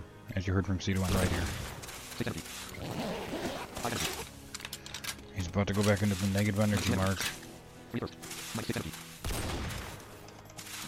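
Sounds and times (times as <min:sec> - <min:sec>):
speech: 0:00.3 - 0:01.6, 0:02.2 - 0:04.2, 0:05.4 - 0:09.0
shotgun blasts in a video game: 0:09.2 - 0:10.2.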